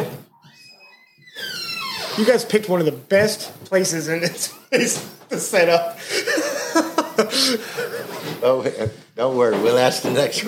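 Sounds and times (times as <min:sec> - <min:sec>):
door hinge squeaking in a drawn-out creak: 0:00.4 - 0:02.4
speech: 0:02.2 - 0:06.9, 0:07.5 - 0:10.4
laughter: 0:04.2 - 0:08.9.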